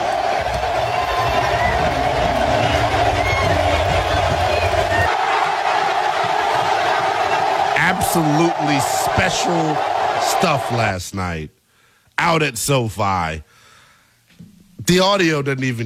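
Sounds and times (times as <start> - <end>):
huge stadium crowd roaring: 0.0 - 11.0
speech: 8.2 - 11.6, 12.2 - 13.6, 14.9 - 15.8.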